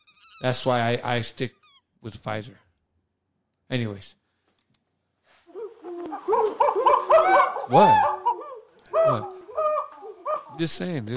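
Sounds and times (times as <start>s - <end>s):
speech: 0.4s - 2.6s, 3.7s - 4.2s, 7.7s - 8.1s, 9.0s - 9.3s, 10.6s - 11.1s
monkey calls with high hooting whoops: 5.5s - 10.6s.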